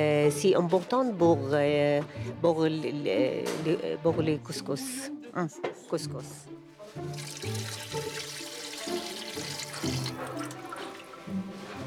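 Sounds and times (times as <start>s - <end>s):
speech: 0.0s - 7.6s
water running from a tap into a cooking pot: 7.0s - 11.5s.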